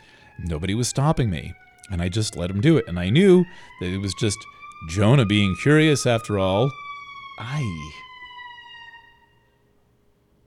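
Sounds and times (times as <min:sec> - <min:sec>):
emergency vehicle siren outside: 0:00.0 - 0:10.4
speech: 0:00.4 - 0:06.8, 0:07.4 - 0:08.1
wavering voice-like burst: 0:00.4 - 0:06.8, 0:07.4 - 0:08.1.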